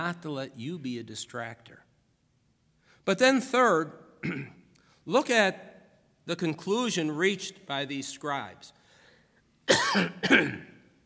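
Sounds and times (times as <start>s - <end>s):
speech: 0.0s - 1.9s, 3.0s - 5.7s, 6.3s - 8.8s, 9.7s - 10.7s
man coughing harshly with a lingering cough: 4.2s - 4.6s, 9.7s - 10.8s.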